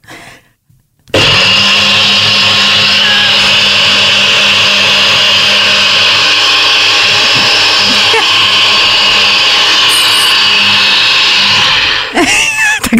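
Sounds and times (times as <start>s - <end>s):
blender motor whirring while mixing a smoothie: 1.1s - 12.3s.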